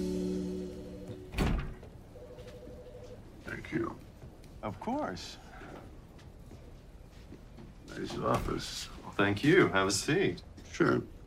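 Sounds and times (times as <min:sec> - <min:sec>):
low steady hum: 0:00.0 - 0:11.2
office door opening with a clunk and rustle: 0:01.1 - 0:02.0
speech: 0:03.7 - 0:05.4, 0:08.0 - 0:11.2.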